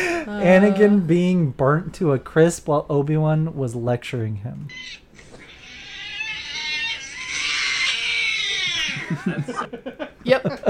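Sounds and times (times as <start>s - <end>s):
speech: 0.2s - 5.0s, 9.1s - 10.6s
cat meowing: 5.4s - 9.2s
people laughing: 8.8s - 10.6s.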